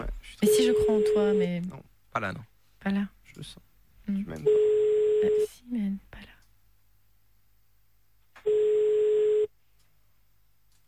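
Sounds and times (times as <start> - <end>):
speech: 0.0 - 6.3
ringback tone from an outgoing phone call: 4.5 - 5.5, 8.4 - 9.5.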